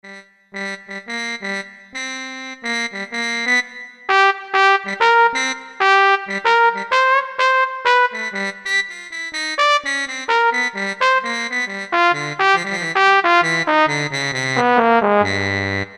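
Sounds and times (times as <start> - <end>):
Velo Trumpet factory patch on Roland U-220: 2.6 - 15.9.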